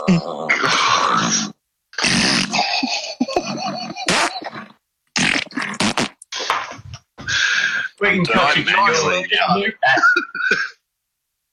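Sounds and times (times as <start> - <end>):
person imitating farting with voice: 0.0 - 6.3
speech: 0.1 - 1.4, 8.2 - 10.7.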